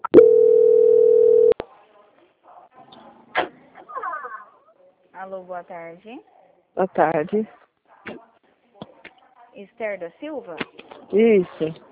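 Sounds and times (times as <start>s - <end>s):
telephone line tone during a call transfer: 0.0s - 1.6s
speech: 5.2s - 8.2s, 9.6s - 11.9s.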